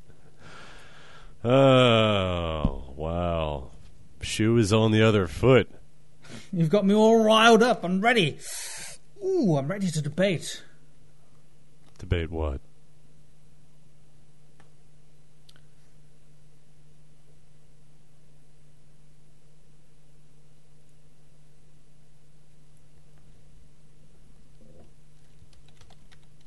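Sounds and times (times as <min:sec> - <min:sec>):
steady low hum and hiss: 0:00.0 - 0:26.4
speech: 0:01.4 - 0:02.0, 0:04.2 - 0:05.8, 0:06.5 - 0:08.7, 0:09.4 - 0:10.7, 0:12.0 - 0:12.7
computer keyboard typing: 0:25.2 - 0:26.4.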